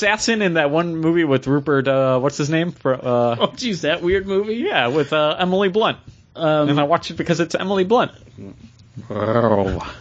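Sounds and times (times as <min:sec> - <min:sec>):
speech: 0:00.0 - 0:10.0
dog growling: 0:08.4 - 0:10.0.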